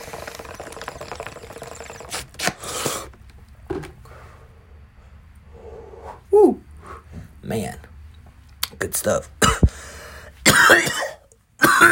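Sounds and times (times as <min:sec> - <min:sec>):
speech: 0:09.0 - 0:09.4, 0:10.7 - 0:11.0
loud harsh cough: 0:10.4 - 0:11.9.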